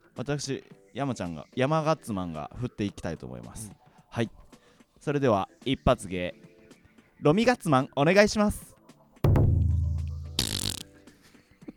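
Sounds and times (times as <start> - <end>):
speech: 0.2 - 4.4, 5.0 - 6.4, 7.2 - 8.7
loud low rumbling fart into a microphone: 10.4 - 10.9.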